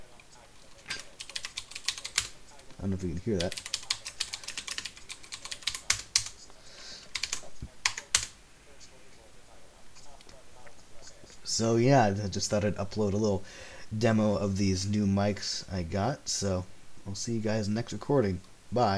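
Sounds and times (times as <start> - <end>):
rapid computer keyboard typing: 0.0 - 6.4, 7.0 - 8.4
speech: 2.8 - 3.7, 11.6 - 18.9.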